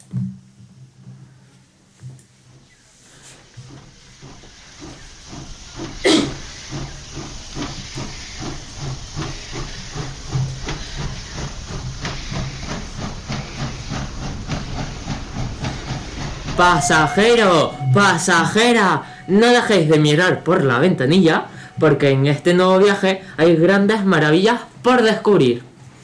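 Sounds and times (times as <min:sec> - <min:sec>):
steam train starting off: 0:00.8 - 0:26.0
loud steam hiss from a steam train: 0:03.0 - 0:25.3
brief whistle-like tone: 0:16.2 - 0:23.3
speech: 0:16.6 - 0:25.7.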